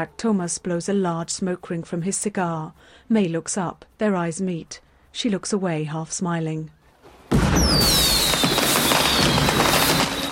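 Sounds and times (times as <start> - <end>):
speech: 0.0 - 6.8
fireworks crackling and booming over a harbour at night: 7.3 - 10.3
whistling firework rockets streaking upward: 7.3 - 10.3.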